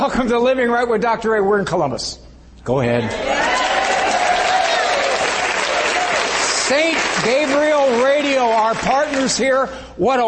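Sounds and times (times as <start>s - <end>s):
speech: 0.0s - 3.4s, 6.7s - 10.2s
studio audience applause: 3.2s - 9.4s.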